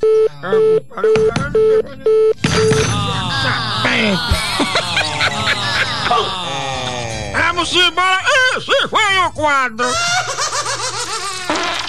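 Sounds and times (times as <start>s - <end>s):
telephone call tone dialing and ringing: 0.0s - 3.0s
busy voices: 2.4s - 8.0s
laughter: 2.6s - 9.0s, 9.8s - 11.6s
speech: 7.7s - 10.6s.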